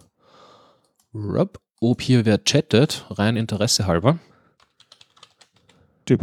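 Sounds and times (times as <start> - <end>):
speech: 1.2 - 4.3, 6.1 - 6.2
computer keyboard typing: 4.6 - 5.8.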